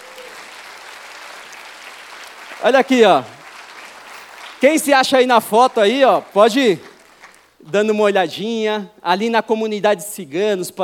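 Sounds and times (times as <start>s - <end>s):
congregation applauding: 0.0s - 7.6s
speech: 2.6s - 3.4s, 4.6s - 6.9s, 7.6s - 10.8s.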